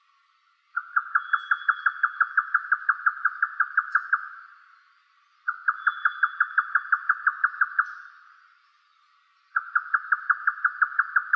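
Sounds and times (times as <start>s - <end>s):
faint thin high whine: 0.0s - 10.2s
grey nightjar calling hollow knocking notes: 0.7s - 4.6s, 5.4s - 8.4s, 9.5s - 11.3s.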